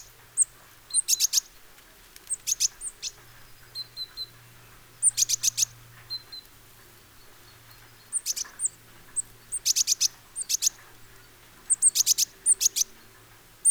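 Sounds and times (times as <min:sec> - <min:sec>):
great tit (Parus major) giving high clipped chirps and thin tsee notes: 0:02.3 - 0:06.5, 0:07.1 - 0:13.6.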